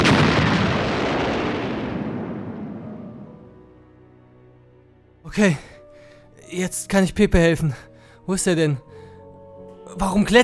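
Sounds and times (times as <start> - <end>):
grenade explosion with long rumbling decay: 0.0 - 3.6
speech: 5.3 - 5.7, 6.5 - 8.9, 9.9 - 10.4.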